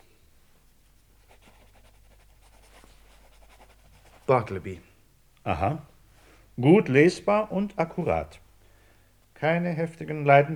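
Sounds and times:
low steady hum: 0.0s - 10.5s
pen scratching across paper writing a name: 1.2s - 4.3s
speech: 4.3s - 5.9s, 6.6s - 8.4s, 9.4s - 10.5s.

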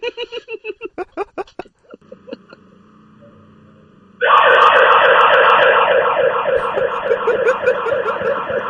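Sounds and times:
laughter: 0.0s - 2.7s, 6.6s - 8.6s
humming tone: 2.0s - 8.6s
home alarm siren wailing: 2.1s - 8.6s.

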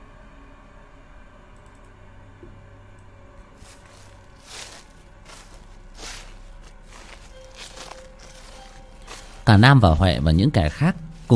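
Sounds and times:
steady low hum: 0.0s - 11.3s
footsteps crunching through fallen leaves at night: 3.6s - 11.3s
speech: 9.5s - 11.3s.

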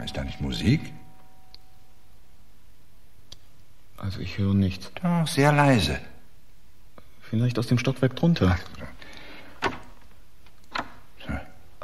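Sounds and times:
speech: 0.0s - 1.0s, 4.0s - 6.1s, 7.3s - 9.0s
door latch clicking and knocking as a door opens: 9.6s - 10.0s, 10.7s - 11.0s.

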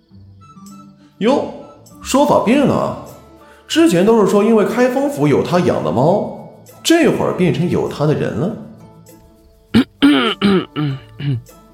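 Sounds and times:
speech: 1.2s - 3.0s, 3.7s - 8.6s, 10.1s - 11.6s
staged throat-clearing coughs in an audio drama: 9.8s - 11.5s.

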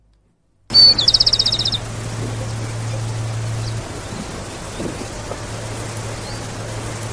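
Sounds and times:
low hum: 0.0s - 7.1s
Rufous-collared Sparrow singing whistle and dry trill: 0.7s - 1.8s.

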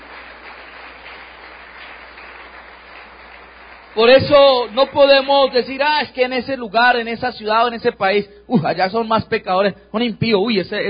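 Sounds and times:
church congregation applauding loudly during a worship service: 0.0s - 6.4s
speech: 4.0s - 10.8s.

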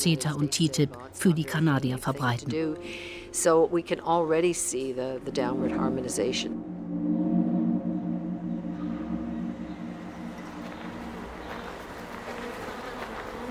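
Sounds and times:
speech: 0.0s - 6.7s
colony of honey bees buzzing around a hive: 4.5s - 13.4s.

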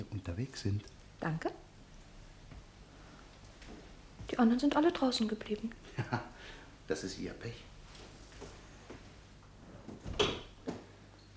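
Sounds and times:
low steady hiss: 0.0s - 11.3s
speech: 0.2s - 1.7s, 4.3s - 7.7s
door being closed quietly: 9.9s - 10.9s.

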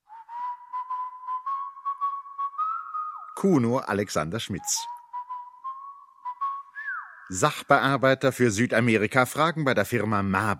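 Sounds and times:
man whistling a tune as he walks away: 0.0s - 3.6s, 4.5s - 7.3s
speech: 3.4s - 5.0s, 7.3s - 10.5s.

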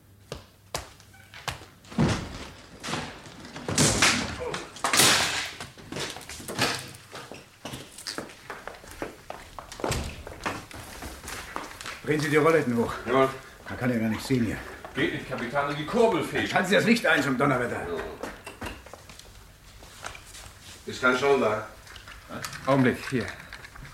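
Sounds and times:
door being broken in with heavy thuds: 1.9s - 7.1s
speech: 12.1s - 18.2s, 20.9s - 23.4s.

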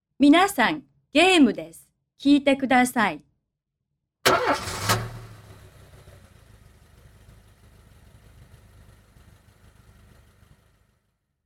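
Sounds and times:
speech: 0.2s - 3.3s, 4.3s - 4.8s
car engine starting and idling: 4.2s - 11.3s.

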